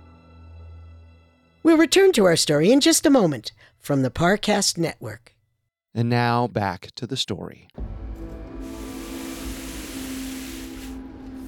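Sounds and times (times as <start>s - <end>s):
speech: 1.6s - 5.4s, 6.0s - 7.9s
water spraying to clean down a mess: 8.6s - 11.4s.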